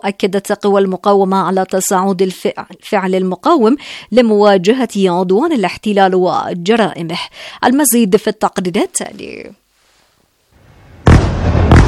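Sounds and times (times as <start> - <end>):
speech: 0.0 - 9.6
bombing explosions from warplane air strikes at night: 10.6 - 11.8.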